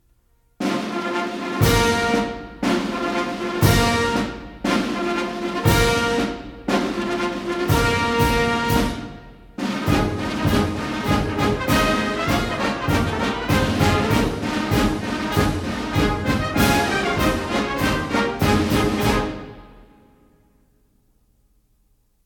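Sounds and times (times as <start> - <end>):
military fanfare leading into a march at a ball: 0.6 - 20.2.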